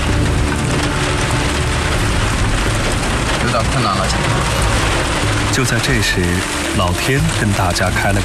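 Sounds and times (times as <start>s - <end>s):
thunder: 0.0s - 5.8s
heavy rain pouring down in the mountains: 0.0s - 8.2s
speech: 3.6s - 8.2s.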